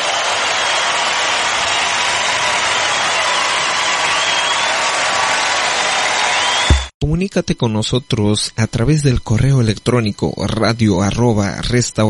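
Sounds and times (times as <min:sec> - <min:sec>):
crowd applauding loudly: 0:00.0 - 0:06.9
speech: 0:07.1 - 0:12.0.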